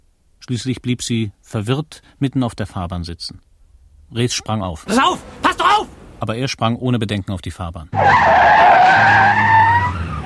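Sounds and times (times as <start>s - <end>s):
speech: 0.5s - 3.5s, 4.1s - 5.6s, 6.2s - 9.6s
car tyres skidding on a road during a near rear-end collision: 4.8s - 6.2s, 8.0s - 10.2s.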